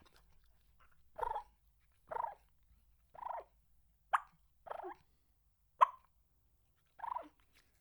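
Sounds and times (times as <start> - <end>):
turkey call clucks and rolling purrs: 1.2 - 1.5, 2.1 - 2.4, 3.2 - 3.5, 4.1 - 5.1, 5.8 - 6.1, 7.0 - 7.4.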